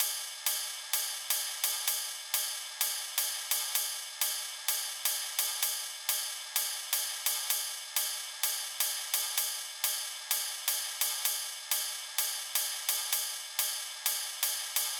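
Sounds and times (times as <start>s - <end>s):
ride cymbal in D sharp at 128 bpm: 0.0s - 14.9s.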